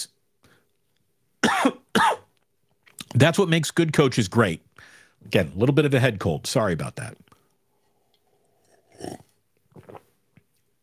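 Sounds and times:
speech: 0:03.2 - 0:07.3
wet slurp of person sipping a drink: 0:07.8 - 0:10.3.

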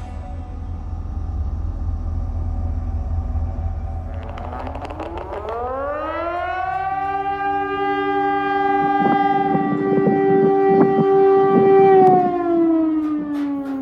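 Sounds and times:
low rumbling background: 0:00.1 - 0:12.7
civil defense siren wailing on the streets of Vilnius Lithuania: 0:00.7 - 0:13.8
emergency alert about a nuclear disaster: 0:03.6 - 0:13.8.

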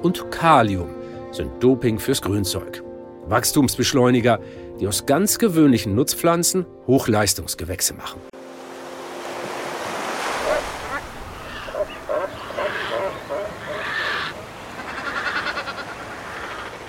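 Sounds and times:
speech: 0:00.0 - 0:08.3
ocean surf breaking against granite rocks off the coast of Peru: 0:08.4 - 0:12.5
faint bird-like calls: 0:10.3 - 0:16.8.

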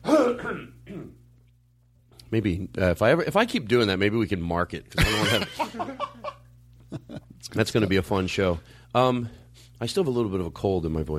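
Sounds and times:
person clearing throat with rough cough-like burst: 0:00.0 - 0:01.2
speech: 0:02.3 - 0:11.1
laughter: 0:05.0 - 0:07.4.

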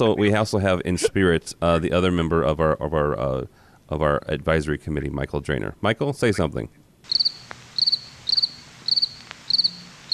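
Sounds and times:
speech: 0:00.0 - 0:07.6
crickets chirping: 0:07.0 - 0:10.1.

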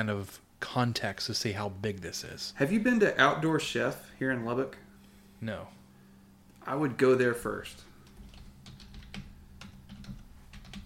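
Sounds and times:
speech: 0:00.0 - 0:04.8, 0:05.4 - 0:05.8, 0:06.6 - 0:07.9
low hum: 0:00.0 - 0:10.8
typing on a computer keyboard: 0:08.0 - 0:10.8.

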